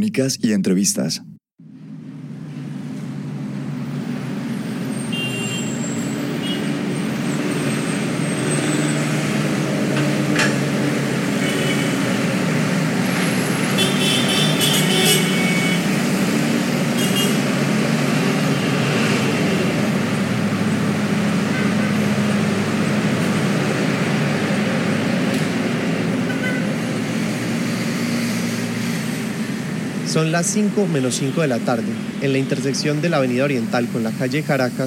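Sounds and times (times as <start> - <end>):
speech: 0.0 - 1.3, 30.3 - 34.8
busy city traffic of car and motorcycle engines: 1.6 - 34.8
car horns in city traffic: 5.0 - 6.8, 11.3 - 12.3, 13.4 - 16.1, 16.9 - 17.5, 21.4 - 22.0, 26.2 - 26.7.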